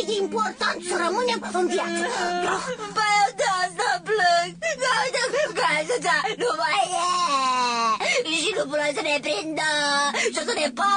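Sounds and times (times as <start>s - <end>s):
speech: 0.0s - 10.9s
person whimpering and crying: 1.4s - 3.5s, 4.5s - 8.2s.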